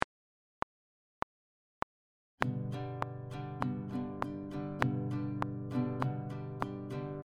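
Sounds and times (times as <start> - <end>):
easy guitar strumming pattern: 2.4 - 7.2.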